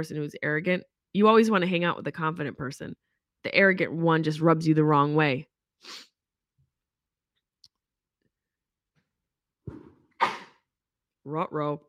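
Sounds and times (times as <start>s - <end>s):
speech: 0.0s - 6.1s, 11.2s - 11.8s
person sneezing: 9.7s - 10.6s.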